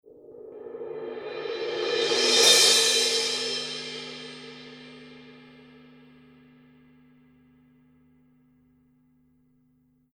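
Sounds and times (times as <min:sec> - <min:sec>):
Paiste Color Sound 900 19 black crash cymbal roll: 0:00.1 - 0:07.0.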